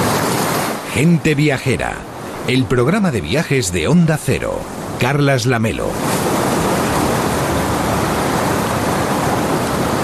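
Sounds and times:
sea waves surf washing: 0:00.0 - 0:10.0
speech: 0:01.0 - 0:06.3.

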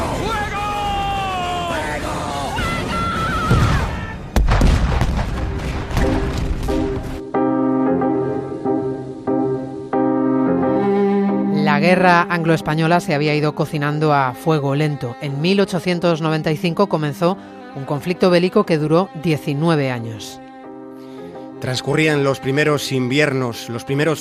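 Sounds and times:
voices shouting in a dramatized sea battle: 0:00.0 - 0:04.3
music: 0:00.0 - 0:24.1
cannon fire in a dramatized sea battle between English and Spanish ships: 0:03.5 - 0:07.2
speech: 0:11.9 - 0:20.4, 0:21.6 - 0:24.1.

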